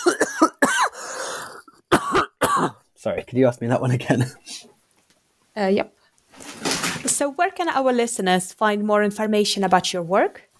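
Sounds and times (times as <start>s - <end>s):
person coughing harshly: 0.0s - 2.8s
speech: 3.0s - 4.6s, 5.6s - 6.0s, 7.2s - 10.5s.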